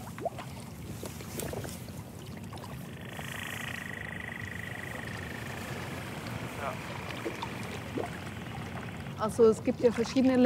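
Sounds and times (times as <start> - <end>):
boat engines droning underwater in the Westfjord via hydrophone: 0.0 - 10.4
faint whining tone: 2.8 - 9.7
speech: 9.2 - 10.4.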